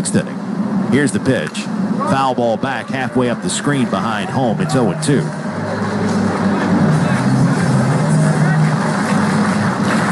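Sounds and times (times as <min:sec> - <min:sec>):
speech: 0:00.0 - 0:06.2
large baseball stadium crowd murmur: 0:00.9 - 0:10.1.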